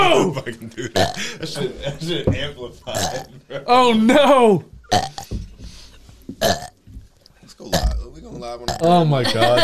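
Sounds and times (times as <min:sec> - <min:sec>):
people laughing: 0:00.0 - 0:02.3, 0:09.1 - 0:09.6
speech: 0:00.2 - 0:05.4, 0:06.4 - 0:06.7, 0:07.6 - 0:09.6
loud drawn-out voiced burp: 0:01.0 - 0:01.2, 0:03.0 - 0:03.3, 0:04.9 - 0:05.3, 0:06.4 - 0:06.8, 0:08.7 - 0:09.0.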